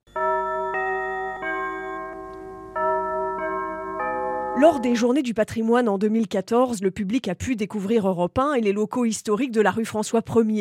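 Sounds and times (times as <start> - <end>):
radio station interval chime with bell-like notes: 0.1 - 5.1
speech: 4.6 - 10.5.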